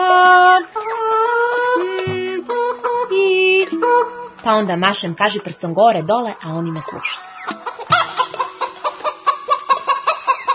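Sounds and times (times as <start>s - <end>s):
frightened roosters and hens clucking frantically: 0.4s - 4.6s, 6.4s - 10.5s
speech: 4.4s - 7.6s.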